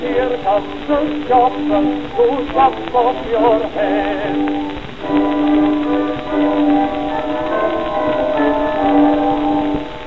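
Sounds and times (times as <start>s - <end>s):
speech: 0.0s - 5.4s
church bells ringing in a peal: 5.0s - 10.0s.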